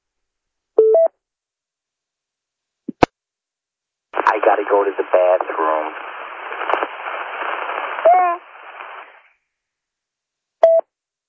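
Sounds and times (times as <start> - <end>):
faint garbled voice fragments over radio: 4.2 - 6.0, 8.0 - 8.4
weak radio transmission hissing with static: 4.2 - 9.3
speech: 4.4 - 6.1.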